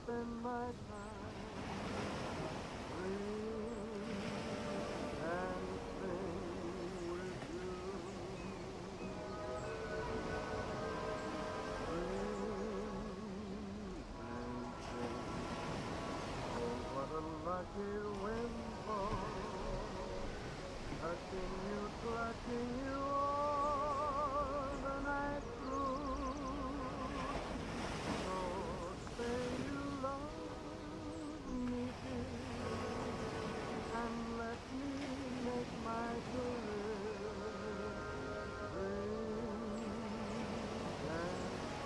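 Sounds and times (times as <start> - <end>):
ocean waves: 0.0 - 41.8
seagulls: 0.0 - 41.8.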